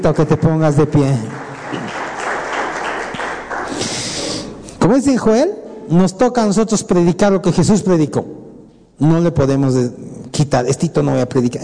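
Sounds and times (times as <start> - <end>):
speech: 0.0 - 1.8, 4.9 - 8.4, 9.0 - 11.6
audience applauding during a sermon: 0.2 - 4.4.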